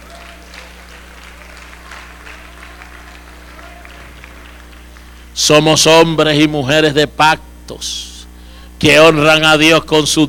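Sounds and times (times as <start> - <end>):
church congregation applauding during a Spanish-language service: 0.0 - 5.5
low hum: 0.0 - 10.2
speech: 5.4 - 8.1, 8.8 - 10.2.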